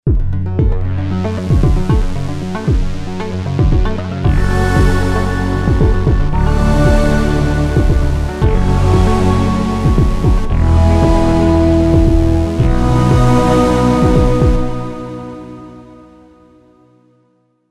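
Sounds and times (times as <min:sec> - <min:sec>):
Roland JP8080 synthesizer: 0:00.0 - 0:17.5.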